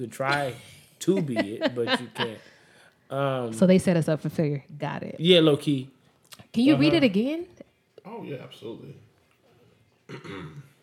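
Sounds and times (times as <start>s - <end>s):
speech: 0.0s - 2.5s, 3.1s - 9.1s, 10.1s - 10.7s
laughter: 0.2s - 2.5s
gravelly throat clearing: 10.1s - 10.8s.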